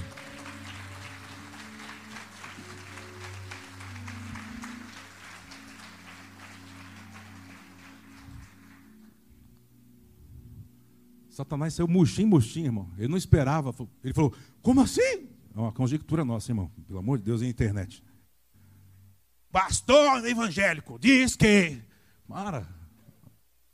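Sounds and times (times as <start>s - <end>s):
large church audience applauding: 0.0s - 9.5s
sustained droning keyboard chords: 0.0s - 13.1s
speech: 11.4s - 18.1s, 19.5s - 22.8s.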